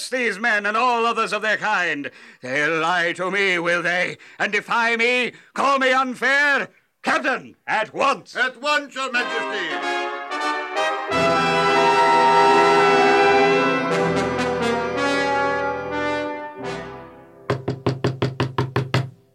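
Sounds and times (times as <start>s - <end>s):
speech: 0.1s - 10.2s
orchestral music: 9.2s - 17.5s
sharp knocks on a door: 17.5s - 19.2s.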